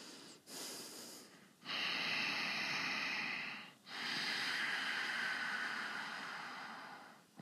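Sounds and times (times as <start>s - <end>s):
person breathing normally: 0.0s - 7.3s.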